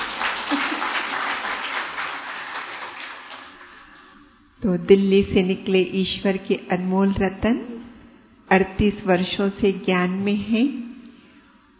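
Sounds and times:
audience applause: 0.0 - 3.8
speech: 4.6 - 7.8, 8.5 - 10.8.

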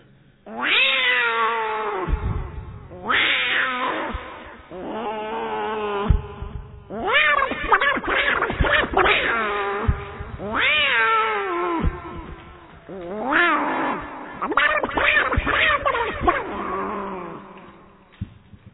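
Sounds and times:
two cats fighting and yowling in the courtyard outside a house: 0.5 - 17.8.

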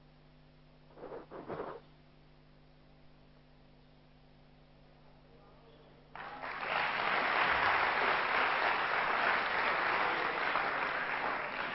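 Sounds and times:
audience clapping: 6.1 - 11.7.

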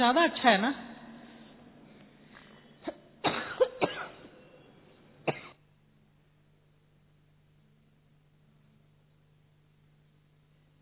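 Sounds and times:
speech: 0.0 - 0.9
person in a harsh raspy coughing fit: 2.8 - 5.6.

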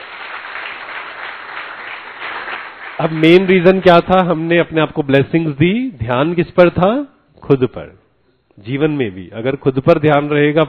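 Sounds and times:
group clapping loudly during a session of spoken self-affirmations: 0.0 - 4.5
speech: 3.0 - 8.0, 8.6 - 10.6.

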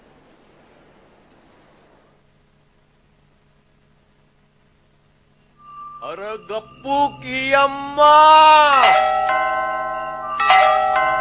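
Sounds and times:
bell rung insistently: 5.6 - 11.2
speech: 6.1 - 9.2.

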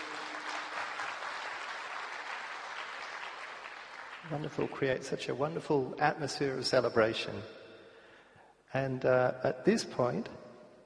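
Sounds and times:
audience applause for performers: 0.0 - 4.9
speech: 4.2 - 7.6, 8.7 - 10.4.

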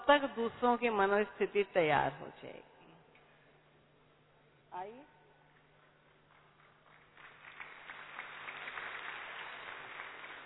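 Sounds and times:
speech: 0.1 - 2.7, 4.7 - 5.2
audience applause: 6.8 - 10.4.

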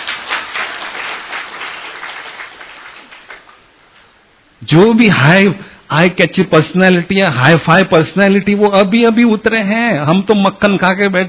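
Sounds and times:
crowd applauding: 0.0 - 3.7
speech: 4.6 - 11.2.

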